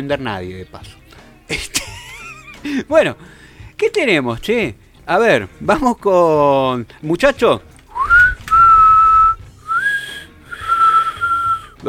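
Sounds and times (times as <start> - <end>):
speech: 0.0 - 1.9, 2.6 - 7.7
laughter: 1.5 - 3.0
two brothers whistling: 7.9 - 11.8.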